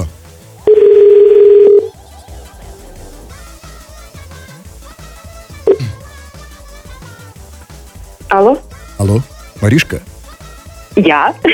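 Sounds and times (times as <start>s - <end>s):
soft music: 0.0s - 11.5s
telephone dial tone: 0.7s - 1.9s
speech: 8.4s - 10.1s, 11.0s - 11.5s.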